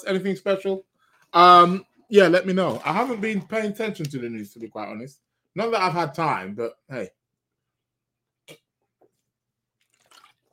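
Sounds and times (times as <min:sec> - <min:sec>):
speech: 0:00.0 - 0:07.2
person sipping water: 0:08.4 - 0:10.5.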